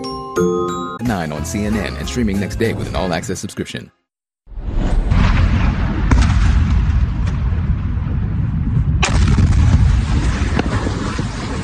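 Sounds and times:
speech: 0.4 - 4.0
deep sustained rumble of a missile strike: 4.5 - 11.6
missile strike explosions: 4.5 - 11.6.

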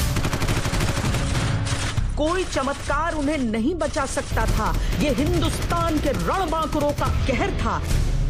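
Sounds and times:
rapid automatic gunfire in a jungle military encounter: 0.1 - 2.0, 4.4 - 7.2
speech: 2.2 - 8.1.

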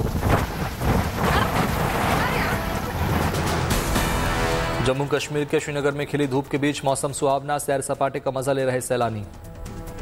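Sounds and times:
howling sandstorm wind: 0.0 - 3.9
speech: 4.8 - 9.5.

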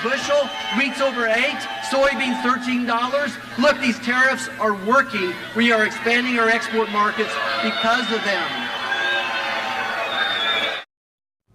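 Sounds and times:
speech: 0.0 - 8.6
large crowd booing: 0.0 - 10.9.

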